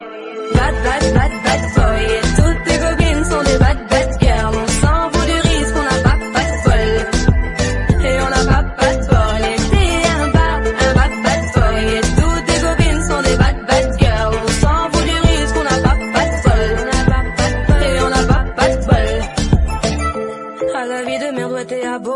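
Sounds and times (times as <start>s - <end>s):
loud ringtone: 0.0s - 22.0s.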